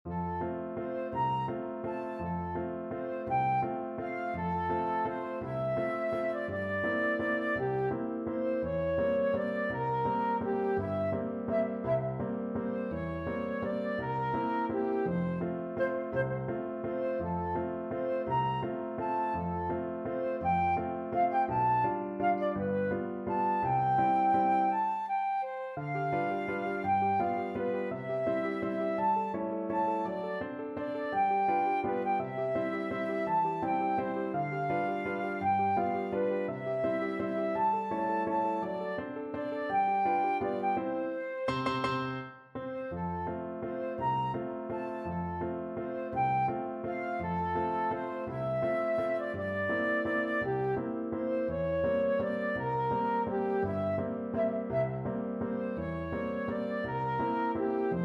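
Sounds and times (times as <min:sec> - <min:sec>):
flute piece: 0:00.1 - 0:58.0.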